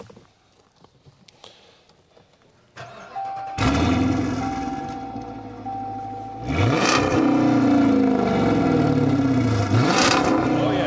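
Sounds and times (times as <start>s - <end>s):
Hemi V8 police car engine with resonators removed starting and revving: 2.8s - 10.8s.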